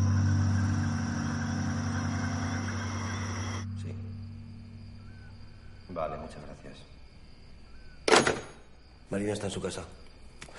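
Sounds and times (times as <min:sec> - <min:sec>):
car engine humming as the car drives back at sunset: 0:00.0 - 0:05.2
speech: 0:06.0 - 0:07.0, 0:09.1 - 0:10.0.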